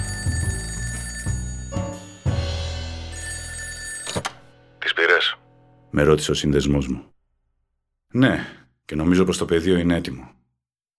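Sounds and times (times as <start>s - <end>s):
telephone bell ringing: 0.0s - 5.4s
speech: 6.0s - 7.2s, 8.1s - 10.4s.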